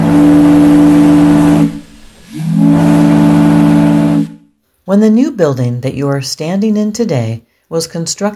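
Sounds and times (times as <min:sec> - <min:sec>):
steam-powered fog signal whistle blast: 0:00.0 - 0:04.6
speech: 0:04.9 - 0:08.3.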